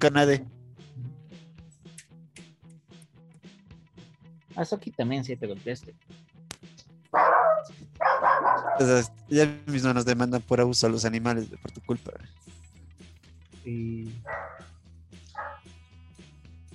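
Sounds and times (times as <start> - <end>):
speech: 0.0 - 0.6, 4.6 - 6.2, 7.1 - 12.5, 13.6 - 14.6
frightened pet dog barking and yelping: 7.2 - 9.1, 14.2 - 14.7, 15.3 - 15.6.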